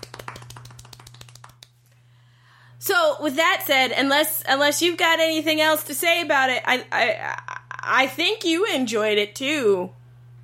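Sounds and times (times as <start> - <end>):
soft polite golf clap: 0.0 - 1.8
low steady hum: 0.0 - 10.4
speech: 2.8 - 10.0.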